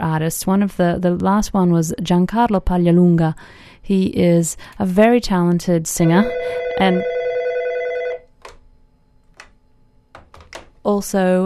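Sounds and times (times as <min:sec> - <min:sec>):
speech: 0:00.2 - 0:07.2, 0:10.8 - 0:11.4
telephone ringing: 0:06.0 - 0:08.3.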